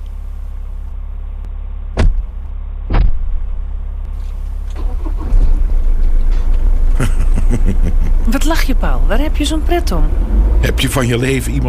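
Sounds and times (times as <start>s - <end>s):
car pulling away to clear the road: 0.0s - 11.6s
two sharp knocks: 2.9s - 3.3s
laughter: 6.9s - 8.3s
speech: 8.5s - 11.6s.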